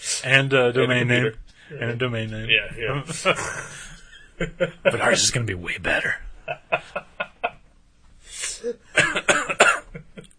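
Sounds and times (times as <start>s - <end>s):
speech: 0.2s - 7.3s, 8.6s - 9.4s
laughter: 2.9s - 7.7s, 9.0s - 10.3s
person coughing: 9.0s - 10.1s.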